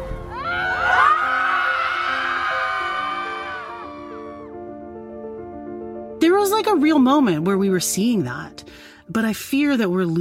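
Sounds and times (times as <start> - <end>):
group of women screaming together: 0.3 - 4.6
speech: 6.4 - 10.1.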